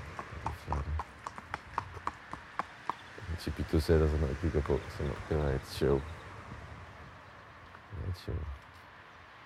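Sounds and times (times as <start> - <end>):
horse hooves clip-clopping on hard ground: 0.0 - 4.8
speech: 3.4 - 6.2.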